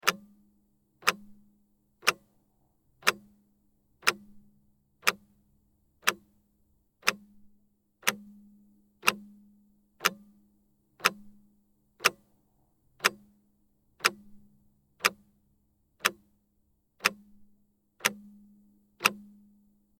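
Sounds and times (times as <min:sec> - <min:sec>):
clock ticking: 0:00.0 - 0:00.3, 0:01.0 - 0:01.3, 0:02.0 - 0:02.3, 0:03.0 - 0:03.3, 0:04.0 - 0:04.2, 0:05.0 - 0:05.2, 0:07.0 - 0:07.3, 0:08.0 - 0:08.4, 0:09.0 - 0:09.4, 0:10.0 - 0:10.4, 0:11.0 - 0:11.4, 0:12.0 - 0:12.3, 0:13.0 - 0:13.3, 0:14.0 - 0:14.3, 0:15.0 - 0:15.2, 0:17.0 - 0:17.4, 0:18.0 - 0:18.4, 0:19.0 - 0:19.4.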